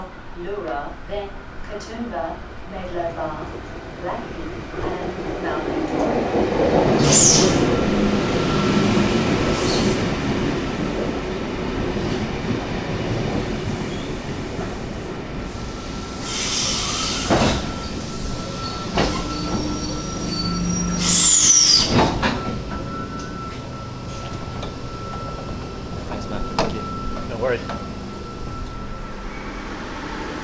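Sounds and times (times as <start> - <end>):
double-deck electric passenger train rumbling and rattling: 0.0 - 30.4
speech: 0.4 - 8.8
high metallic train wheel squeals: 16.0 - 30.3.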